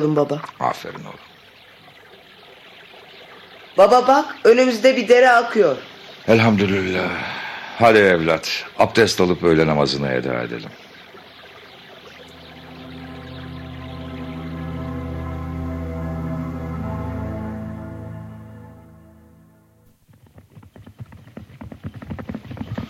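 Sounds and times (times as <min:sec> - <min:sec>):
speech: 0:00.0 - 0:01.3, 0:03.8 - 0:10.9
sustained tonal drone: 0:00.8 - 0:19.9
horse hooves galloping: 0:19.9 - 0:22.8.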